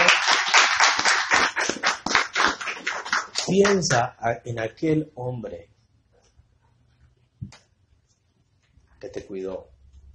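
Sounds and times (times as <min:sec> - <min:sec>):
crowd clapping hands: 0:00.0 - 0:04.1
speech: 0:03.5 - 0:05.7, 0:09.0 - 0:09.7.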